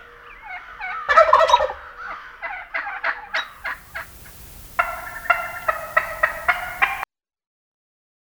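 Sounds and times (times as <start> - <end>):
wild turkey gobbling: 3.5 - 7.0.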